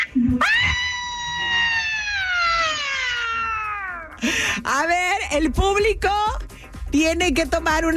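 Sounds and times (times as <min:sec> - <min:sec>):
long high-pitched human scream: 0:00.0 - 0:04.2
speech: 0:04.8 - 0:07.9.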